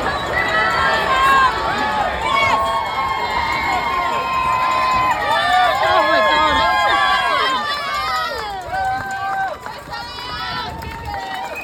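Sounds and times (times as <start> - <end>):
footsteps of a runner crossing a bridge: 0.0 - 11.6
marathon crowd screaming and cheering on a bridge: 0.0 - 11.6.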